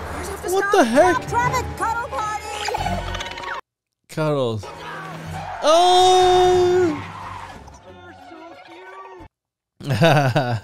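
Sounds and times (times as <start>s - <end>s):
speech: 0.5s - 2.2s, 4.2s - 4.8s, 5.6s - 7.0s, 9.9s - 10.6s
car skidding hard on a freeway: 4.6s - 9.3s
long wavering tire squeal: 4.6s - 9.3s
laughter: 9.8s - 10.6s.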